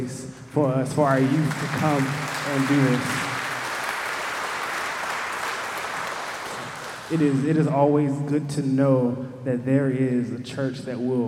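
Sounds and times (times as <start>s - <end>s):
speech: 0.0s - 3.3s, 7.1s - 11.2s
crowd applauding with many hands clapping: 0.9s - 7.5s.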